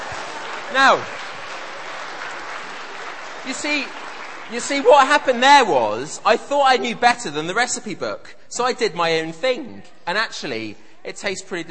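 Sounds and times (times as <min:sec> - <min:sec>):
audience applause for a participant after a cake tasting: 0:00.0 - 0:06.1
speech: 0:00.7 - 0:01.2, 0:03.4 - 0:11.6.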